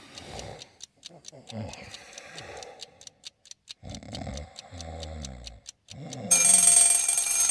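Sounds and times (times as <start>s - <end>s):
mechanical bell alarm clock ticking: 0.0s - 7.5s
mechanical alarm clock bell ringing: 6.3s - 7.5s.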